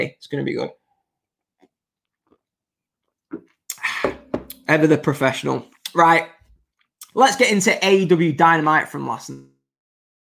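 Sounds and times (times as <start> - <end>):
speech: 0.0 - 0.8, 4.7 - 6.4, 7.2 - 9.5
person sipping a hot latte: 1.5 - 4.2.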